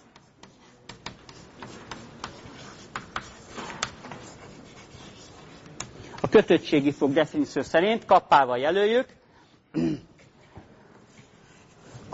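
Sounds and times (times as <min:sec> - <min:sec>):
chalk tapping on a board: 0:00.0 - 0:06.4
chalk writing on a board: 0:00.0 - 0:07.2, 0:11.1 - 0:12.1
speech: 0:06.3 - 0:09.2.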